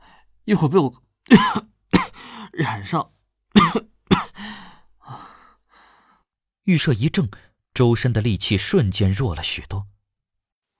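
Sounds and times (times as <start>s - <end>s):
speech: 0.5s - 1.7s, 2.6s - 3.9s, 6.7s - 9.9s
woman coughing from illness brought on by a sudden chill: 1.3s - 2.9s, 3.6s - 4.4s.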